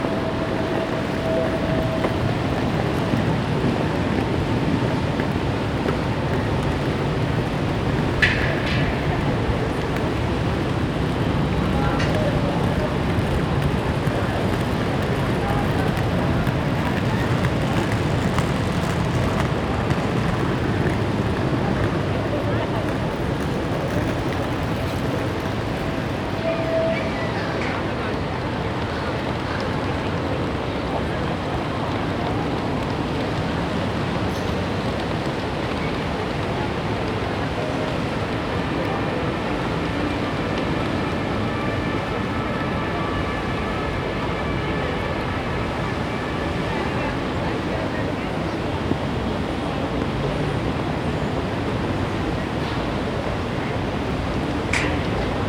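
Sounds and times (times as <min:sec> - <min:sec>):
city plaza ambience: 0:00.0 - 0:55.4.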